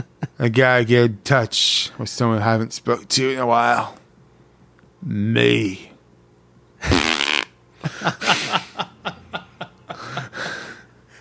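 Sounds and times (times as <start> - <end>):
speech: 0.0 - 4.0, 5.0 - 5.9, 7.8 - 8.6
loud buzzy fart: 6.8 - 7.6
snickering stifled laughter: 7.8 - 10.8.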